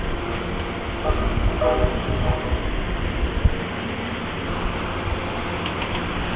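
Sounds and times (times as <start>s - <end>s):
heavily loaded passenger train lurching forward with low rumbling: 0.0s - 6.3s
steady rail noise: 0.0s - 6.3s
train horn sounding two long tones: 1.0s - 2.6s.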